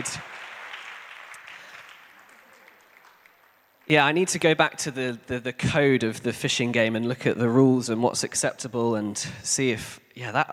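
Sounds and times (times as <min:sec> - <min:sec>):
small group applauding after a fishing game: 0:00.0 - 0:04.2
speech: 0:03.9 - 0:10.5.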